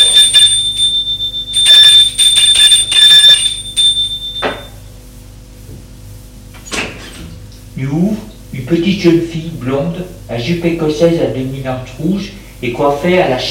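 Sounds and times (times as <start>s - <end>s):
doorbell ringing at a front door: 0.0s - 4.8s
low hum: 0.0s - 13.4s
speech: 7.8s - 13.4s.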